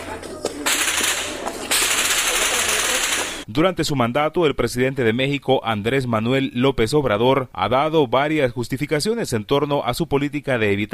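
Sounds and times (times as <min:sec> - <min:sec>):
sharp cracks of gunfire during a crossfire: 0:00.6 - 0:03.4
speech: 0:03.5 - 0:10.9.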